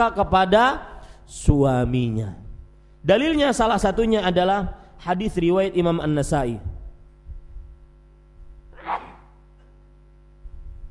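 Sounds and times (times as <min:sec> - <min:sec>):
speech: 0:00.0 - 0:02.4, 0:03.0 - 0:06.7
low steady hum: 0:00.0 - 0:10.9
person sneezing: 0:08.8 - 0:09.4.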